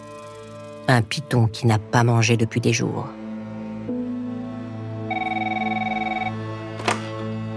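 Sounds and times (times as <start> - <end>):
music: 0.0 - 7.5
speech: 0.9 - 3.2
telephone ringing with a rapid trilling bell tone: 5.1 - 6.7.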